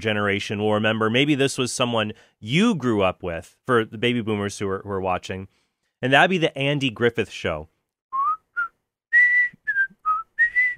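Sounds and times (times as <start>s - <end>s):
speech: 0.0s - 7.7s
person whistling a TV theme tune: 8.1s - 10.7s.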